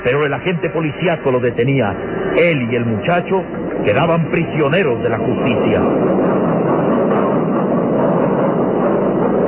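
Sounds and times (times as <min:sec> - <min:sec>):
speech: 0:00.0 - 0:06.5
moving train rumble: 0:00.0 - 0:09.4.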